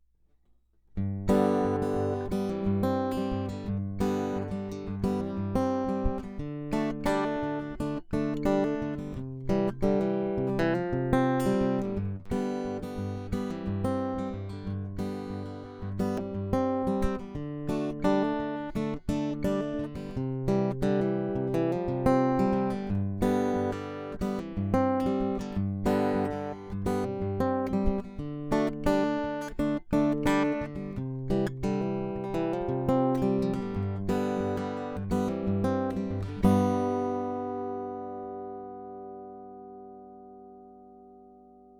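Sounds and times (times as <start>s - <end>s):
fingerstyle guitar through pickup: 0.9s - 41.7s.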